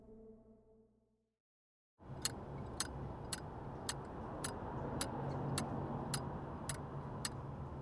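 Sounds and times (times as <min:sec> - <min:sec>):
low engine-like rumble: 0:02.0 - 0:07.8
metronome ticking: 0:02.1 - 0:07.8.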